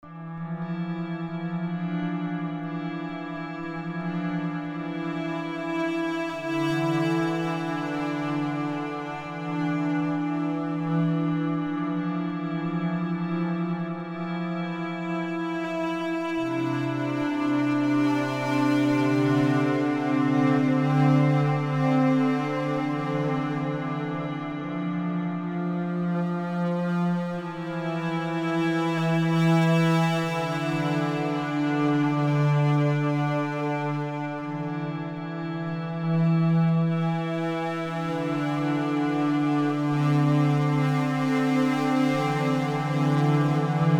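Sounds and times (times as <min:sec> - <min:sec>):
ambient strings: 0:00.0 - 0:43.9.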